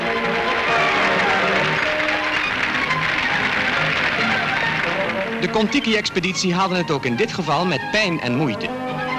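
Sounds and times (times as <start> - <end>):
applause from guests for a boat parade at a scouting water camp: 0.0 - 6.6
speech: 5.4 - 9.0.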